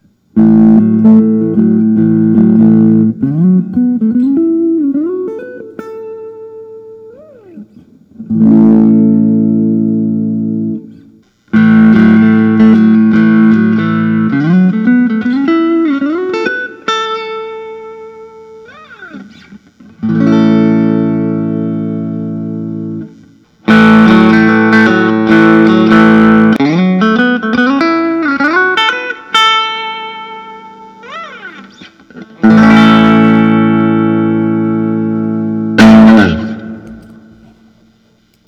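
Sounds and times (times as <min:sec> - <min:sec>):
Fender Telecaster electric guitar: 0:00.0 - 0:38.4.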